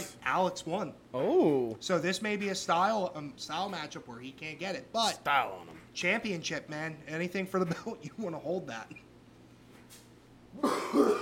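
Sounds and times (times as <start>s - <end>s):
speech: 0.2s - 9.0s, 10.6s - 11.1s
person coughing: 10.6s - 11.1s.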